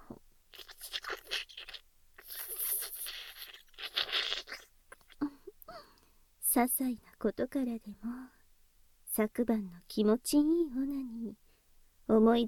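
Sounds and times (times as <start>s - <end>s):
person slurping tea: 0.5s - 5.2s
speech: 6.6s - 8.4s, 9.2s - 11.4s, 12.1s - 12.4s.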